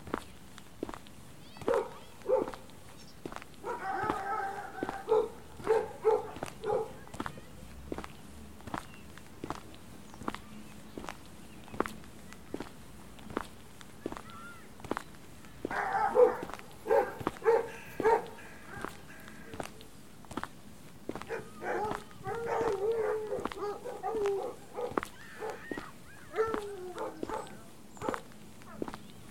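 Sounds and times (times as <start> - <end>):
footsteps crunching at a walking pace: 0.0 - 29.2
dogs barking: 1.6 - 2.7, 3.6 - 7.2, 15.6 - 19.6, 21.2 - 29.0.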